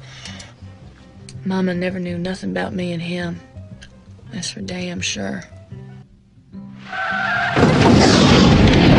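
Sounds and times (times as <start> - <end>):
speech: 1.4 - 3.5, 4.4 - 5.6
tire screech: 6.8 - 8.8.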